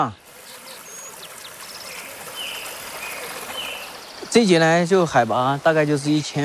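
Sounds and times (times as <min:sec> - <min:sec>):
speech: 0:00.0 - 0:00.2, 0:04.3 - 0:06.4
rushing mountain stream: 0:00.0 - 0:06.4.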